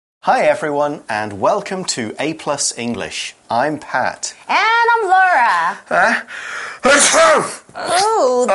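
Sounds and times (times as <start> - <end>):
speech: 0.2 - 8.5
loud strongly voiced human sneeze with gasping intake: 6.8 - 8.1.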